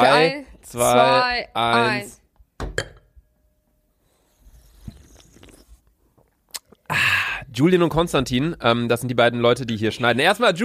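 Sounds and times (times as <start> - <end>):
speech: 0.0 - 2.9, 6.9 - 10.6
drinks banged down on a table in a toast: 2.6 - 3.1.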